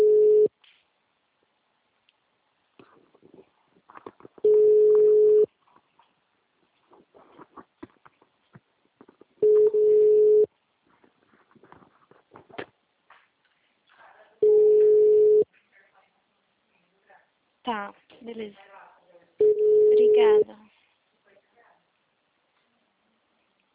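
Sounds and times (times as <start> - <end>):
telephone busy signal on an engaged line: 0.0 - 0.5, 4.4 - 5.5, 9.4 - 10.5, 14.4 - 15.4, 19.4 - 20.4.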